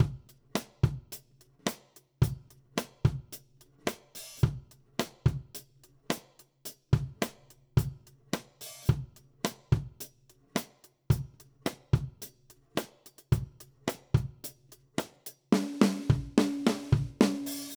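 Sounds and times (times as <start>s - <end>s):
country drum beat: 0.0s - 17.7s.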